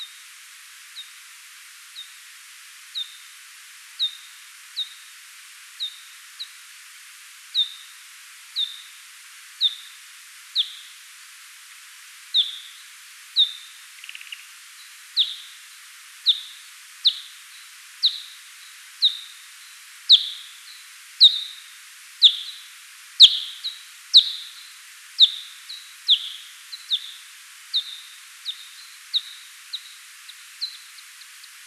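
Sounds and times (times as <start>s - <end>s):
Pipistrellus kuhlii FM echolocation call slowed down: 7.6s - 8.0s, 8.6s - 9.0s, 9.6s - 10.0s, 10.6s - 11.0s, 12.4s - 31.6s.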